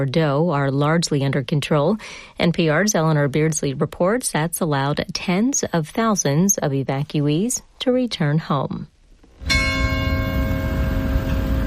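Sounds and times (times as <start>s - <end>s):
speech: 0.0s - 9.6s
church bell striking in a village near Bordeaux in southwest France: 9.4s - 11.6s.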